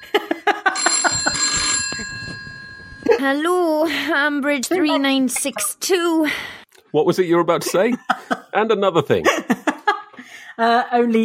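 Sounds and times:
laughter: 0.0s - 1.6s, 7.5s - 10.2s
telephone bell ringing: 0.6s - 3.3s
speech: 3.2s - 9.6s, 10.6s - 11.2s.

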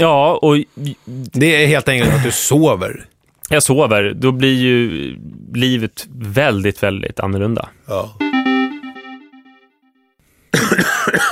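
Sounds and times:
speech: 0.0s - 8.2s, 10.5s - 11.3s
loud harsh coughing: 2.0s - 2.5s, 10.6s - 11.3s
sustained tone: 8.2s - 9.9s.

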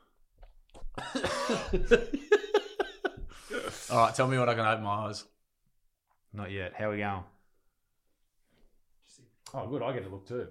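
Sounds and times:
person coughing harshly after a sip of whiskey: 1.0s - 1.9s
laughter: 1.0s - 4.1s
speech: 1.2s - 2.2s, 3.9s - 5.3s, 6.4s - 7.3s, 9.5s - 10.5s.

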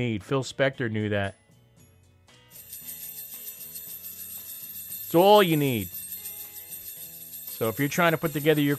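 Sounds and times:
speech: 0.0s - 1.4s, 5.1s - 6.0s, 7.6s - 8.7s
sleigh bells jingling: 2.5s - 8.7s.

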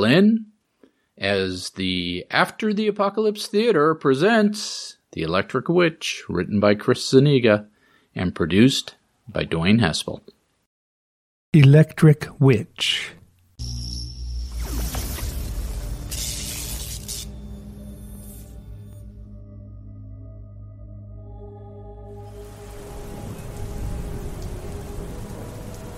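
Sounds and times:
speech: 0.0s - 0.5s, 1.2s - 10.4s, 11.6s - 13.9s
steady heavy rain: 22.2s - 25.9s
deep thunder rumbling: 22.3s - 25.9s.

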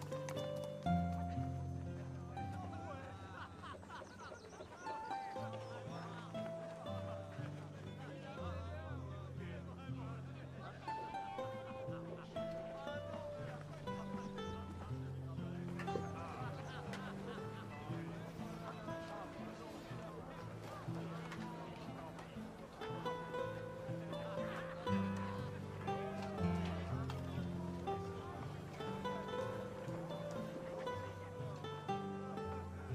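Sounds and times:
music with held low bass notes and shifting melody lines: 0.0s - 3.4s, 4.9s - 32.9s
faint chatter in a quiet town: 0.0s - 32.9s
laughter: 0.0s - 32.9s.

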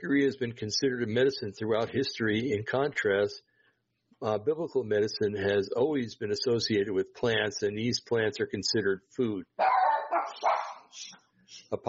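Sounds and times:
speech: 0.0s - 3.5s, 4.2s - 10.5s
dogs barking: 9.6s - 10.9s.

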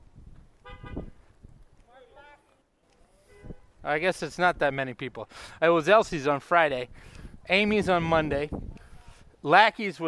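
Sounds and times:
car horn honking: 0.6s - 1.2s, 3.2s - 3.8s
speech: 3.8s - 8.7s, 9.4s - 10.0s.

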